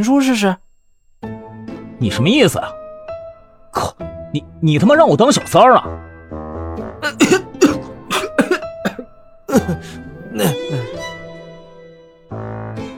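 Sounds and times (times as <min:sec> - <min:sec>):
speech: 0:00.0 - 0:00.6, 0:02.0 - 0:02.8, 0:03.8 - 0:06.1, 0:09.5 - 0:10.9
man coughing after choking: 0:03.8 - 0:04.0, 0:07.0 - 0:11.0
throat noises: 0:03.8 - 0:04.0, 0:07.0 - 0:11.0.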